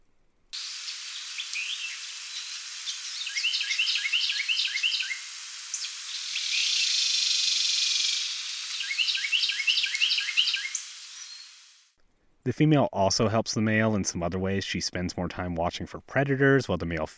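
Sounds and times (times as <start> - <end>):
steady high-pitched background hiss: 0.4 - 12.0
male Carolina Wren song: 0.5 - 11.9
speech: 12.5 - 17.1.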